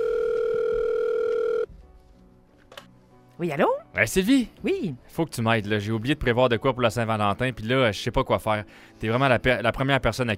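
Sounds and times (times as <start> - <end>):
steady telephone tone while calling a colleague: 0.0 - 1.7
speech: 3.4 - 10.3.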